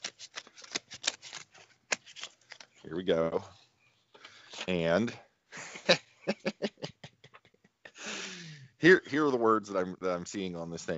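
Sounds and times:
paper envelope being opened: 0.0 - 3.2
speech: 2.9 - 3.6, 4.7 - 5.2, 5.9 - 6.7, 8.8 - 10.9
laughter: 5.6 - 8.4.

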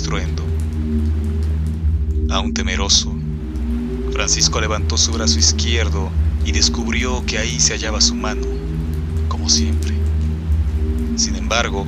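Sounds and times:
continuous deep rumbling drone: 0.0 - 11.8
steady rain pattering across a surface: 0.0 - 11.8
speech: 0.1 - 0.4, 2.3 - 3.1, 4.2 - 8.6, 9.4 - 9.9, 11.2 - 11.8.

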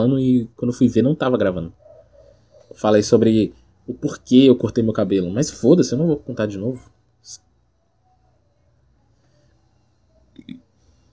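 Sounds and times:
speech: 0.0 - 1.8, 2.8 - 7.4
short low burp: 10.4 - 10.6.

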